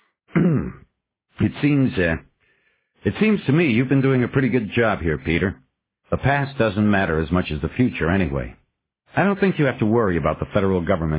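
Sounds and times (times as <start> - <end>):
man clearing his throat: 0.3 - 0.9
man coughing: 0.3 - 0.9
speech: 0.4 - 0.8, 1.4 - 2.3, 3.0 - 11.1.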